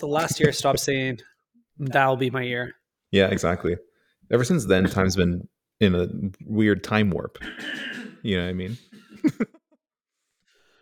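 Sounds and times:
speech: 0.0 - 9.6
person coughing after eating a foot-long sandwich: 7.4 - 9.4.

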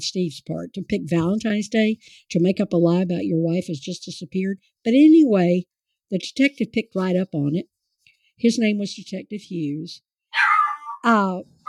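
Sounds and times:
speech: 0.0 - 7.7, 8.4 - 11.6
dog giving a high falling whine: 10.4 - 11.1.

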